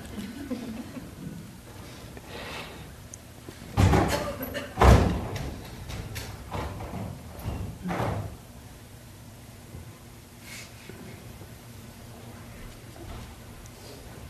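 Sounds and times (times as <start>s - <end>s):
laughter: 0.1s - 1.5s
door shutting with firm thuds: 3.7s - 8.3s.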